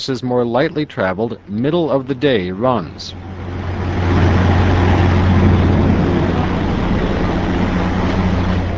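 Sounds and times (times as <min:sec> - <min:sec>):
speech: 0:00.0 - 0:03.2
heavy diesel engine of a self-propelled rail car rumbling: 0:00.0 - 0:08.7.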